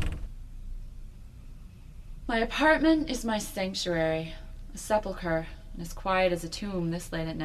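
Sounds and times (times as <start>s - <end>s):
apartment door pushed open by a person leaning against it: 0.0s - 0.3s
low quiet room rumble: 0.0s - 7.4s
speech: 2.3s - 7.4s.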